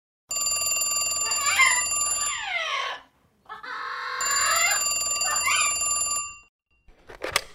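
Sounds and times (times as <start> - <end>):
electronic telephone ringing in an operations headquarters: 0.3 - 2.7, 4.2 - 6.5.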